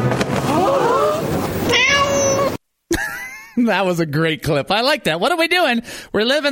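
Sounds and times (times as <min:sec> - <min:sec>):
cat meowing: 0:00.9 - 0:02.6
speech: 0:03.6 - 0:06.4.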